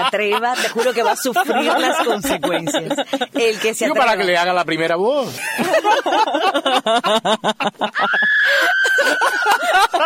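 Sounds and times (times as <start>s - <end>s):
audience laughing: 0.0s - 4.2s, 5.4s - 10.0s
speech: 0.0s - 10.0s
audience member screaming high-pitched: 8.0s - 9.6s.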